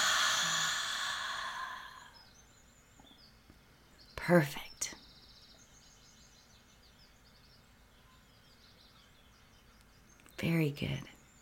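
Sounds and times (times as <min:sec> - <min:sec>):
deep breath released as a long airy exhale during a guided breathing exercise: 0:00.0 - 0:02.2
speech: 0:04.3 - 0:05.0, 0:10.4 - 0:11.1.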